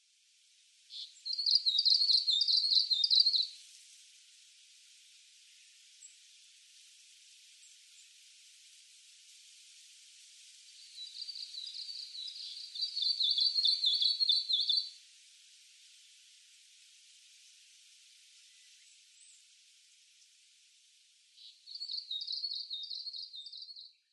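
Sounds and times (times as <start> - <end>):
Japanese leaf warbler calling on Hayachine: 0.9 - 3.6, 10.8 - 14.9, 21.4 - 23.9.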